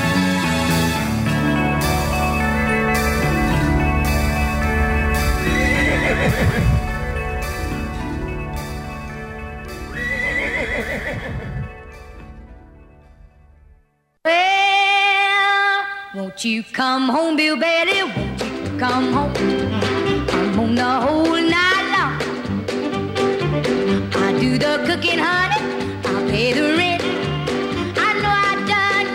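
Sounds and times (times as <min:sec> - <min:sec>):
full musical backing: 0:00.0 - 0:29.1
horse whinnying: 0:05.4 - 0:06.9, 0:09.9 - 0:11.8
speech: 0:16.4 - 0:20.0.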